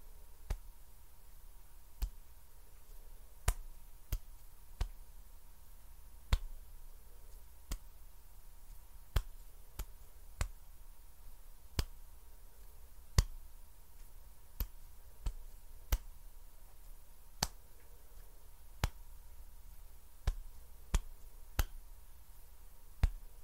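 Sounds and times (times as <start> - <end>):
faint steady hum and low rumble: 0.0 - 23.4
sharp finger snaps: 2.0 - 2.2, 2.8 - 5.0, 6.3 - 6.6, 7.3 - 7.9, 8.7 - 10.6, 11.7 - 12.0, 13.1 - 13.4, 14.0 - 16.2, 16.8 - 17.6, 18.2 - 19.0, 20.2 - 21.8, 23.0 - 23.3.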